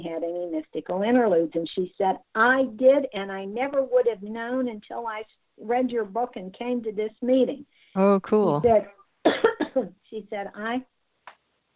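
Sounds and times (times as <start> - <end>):
speech: 0.0 - 10.9
voice murmuring: 8.0 - 8.8
person coughing: 9.3 - 9.8.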